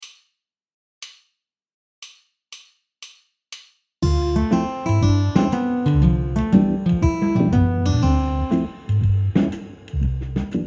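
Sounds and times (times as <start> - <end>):
jazz guitar arpeggios ii V7 I in C major: 4.0 - 9.7.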